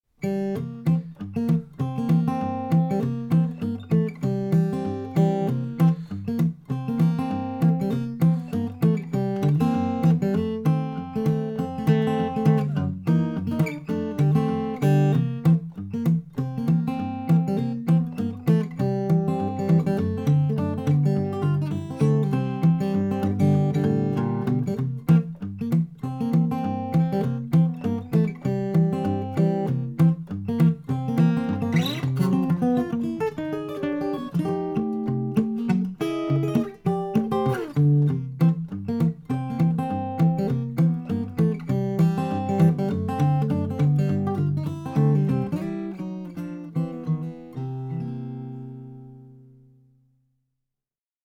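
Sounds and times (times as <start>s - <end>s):
picking: 0.2s - 49.4s.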